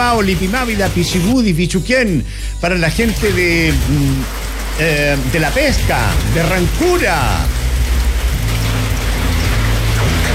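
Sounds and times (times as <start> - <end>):
speech: 0.0 - 7.6
heavy rain pouring down: 0.0 - 10.3
low droning hum: 3.0 - 10.3.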